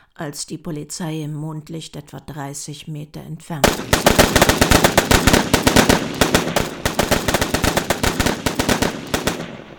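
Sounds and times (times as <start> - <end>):
speech: 0.2 - 5.4
rapid gunfire: 3.6 - 9.7.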